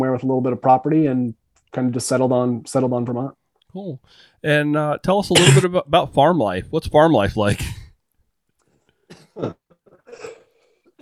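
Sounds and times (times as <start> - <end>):
speech: 0.2 - 7.7, 9.4 - 9.6
brief breaths: 4.0 - 4.4, 8.6 - 9.3, 10.4 - 10.9
person coughing from pollen stuck in the throat: 5.3 - 5.7, 9.1 - 10.9
throat clearing: 5.4 - 5.7, 9.1 - 10.9.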